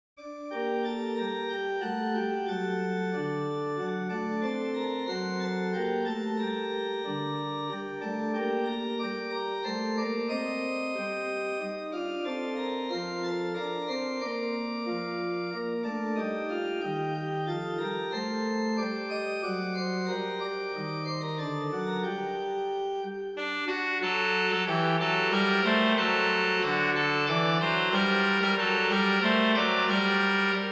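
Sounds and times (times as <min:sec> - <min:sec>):
organ playing an air in G minor: 0:00.2 - 0:30.7
trumpets: 0:23.4 - 0:30.7.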